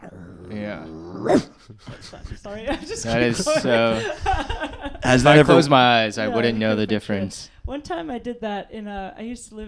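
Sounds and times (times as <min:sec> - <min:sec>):
person imitating dog growls and barks: 0:00.0 - 0:01.6
speech: 0:00.7 - 0:09.6
laughter: 0:01.6 - 0:06.9.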